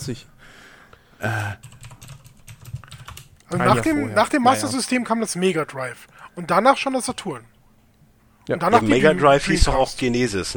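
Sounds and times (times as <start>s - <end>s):
speech: 0.0s - 1.8s, 3.5s - 7.5s, 8.5s - 10.5s
rapid typing on a computer keyboard: 1.4s - 3.5s.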